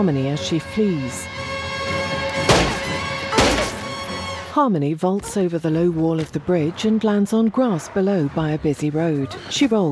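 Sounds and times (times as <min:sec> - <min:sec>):
speech: 0:00.0 - 0:01.5, 0:04.6 - 0:09.8
car ramming into an upturned van: 0:02.5 - 0:03.8.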